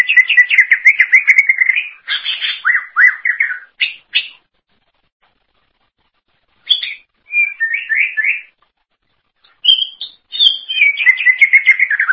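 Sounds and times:
greater green leafbird song with whistled notes and trills: 0.0s - 4.4s, 6.6s - 8.6s, 9.4s - 12.1s.

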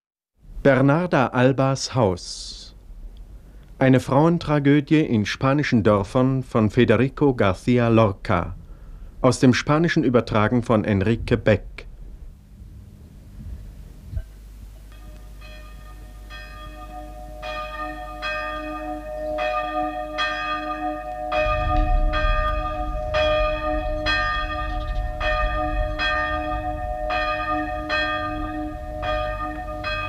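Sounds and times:
speech: 0.6s - 2.6s, 3.8s - 8.6s, 9.2s - 11.7s
deep rumble: 10.9s - 17.5s, 20.4s - 30.0s
church bells tolling for a funeral: 14.9s - 30.0s.

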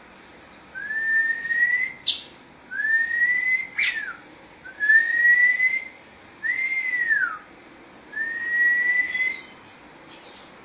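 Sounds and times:
Oriental magpie-robin song of rising whistles: 0.8s - 7.5s, 8.1s - 10.6s.

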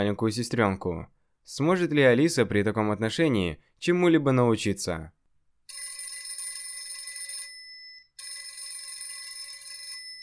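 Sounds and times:
speech: 0.0s - 5.8s
telephone ringing in a room of a family house: 5.7s - 10.2s.

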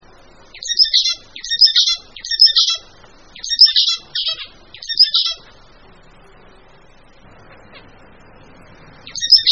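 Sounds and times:
mixed birds high fast twittering song: 0.5s - 5.5s, 9.0s - 9.5s.

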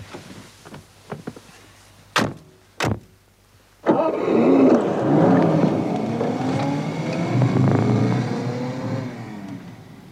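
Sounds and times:
car engine starting and pulling away: 3.8s - 10.0s.

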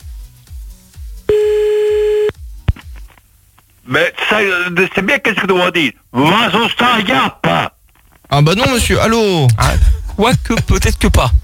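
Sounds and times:
telephone tone while calling someone back: 1.3s - 2.3s
speech: 3.9s - 7.7s, 8.4s - 11.4s.

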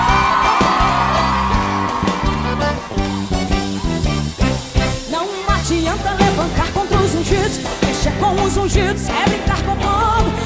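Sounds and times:
crowd yelling and whooping at a gospel concert: 0.0s - 4.5s
gospel concert music with a rhythmic beat: 0.0s - 9.8s
speech: 8.5s - 10.2s.

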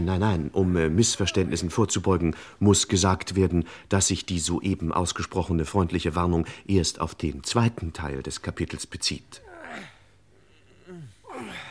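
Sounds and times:
speech: 0.0s - 9.9s
men breathing heavily while straining at hard physical work: 2.3s - 2.6s, 9.7s - 11.6s.

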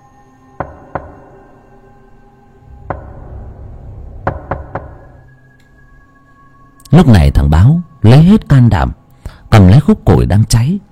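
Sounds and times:
low hum: 0.0s - 10.9s
urgent knocking on a door at night: 0.6s - 1.4s, 2.8s - 3.4s, 4.2s - 5.2s
speech: 7.0s - 9.0s, 9.6s - 10.9s.

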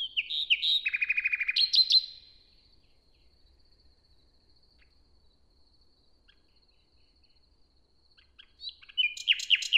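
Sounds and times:
common nightingale morning song in a forest: 0.0s - 9.7s.

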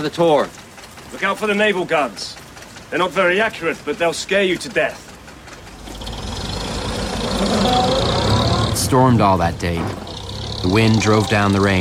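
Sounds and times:
speech: 0.0s - 5.1s, 8.8s - 11.7s
car engine rumbling as the car leaves: 2.3s - 11.7s.

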